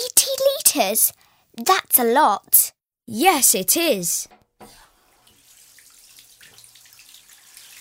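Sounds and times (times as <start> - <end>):
speech: 0.8 - 4.8
water running from tap filling bath: 4.7 - 7.8.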